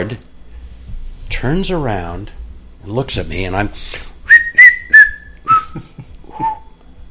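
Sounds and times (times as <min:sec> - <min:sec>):
speech: 0:00.0 - 0:00.3, 0:01.4 - 0:04.1
person whistling a short tune: 0:04.3 - 0:06.8.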